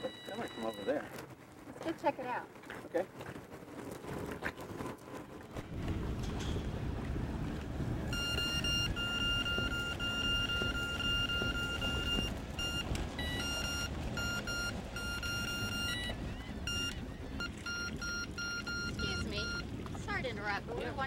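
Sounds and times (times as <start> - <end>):
electronic fishing bite alarm beeping: 0.0 - 1.0, 8.1 - 19.7
constant low rumble of outdoor noise: 0.0 - 21.0.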